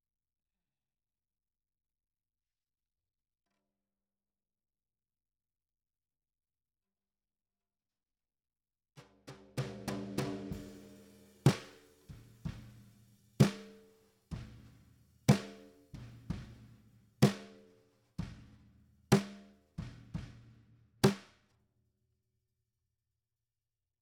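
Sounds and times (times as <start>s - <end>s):
snare drum: 9.0s - 21.4s.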